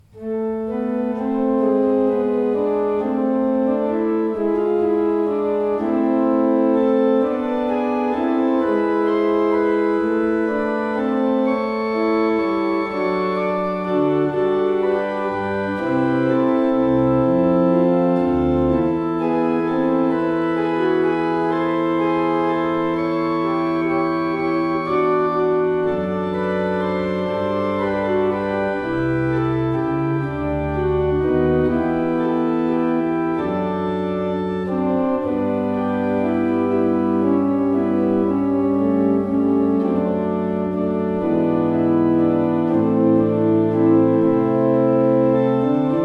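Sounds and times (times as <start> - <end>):
pipe organ: 0.0 - 46.0.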